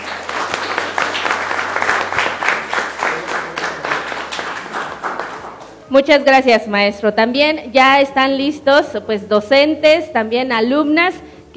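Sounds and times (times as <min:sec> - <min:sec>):
audience applauding after a speech at an event: 0:00.0 - 0:05.8
speech: 0:05.9 - 0:11.5.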